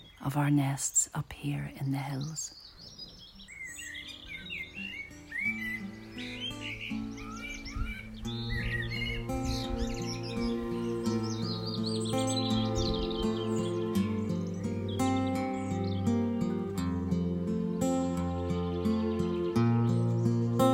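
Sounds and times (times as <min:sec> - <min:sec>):
many birds chirping and singing in the hills in spring: 0:00.0 - 0:20.7
speech: 0:00.2 - 0:02.6
sustained low musical tones: 0:05.8 - 0:20.7.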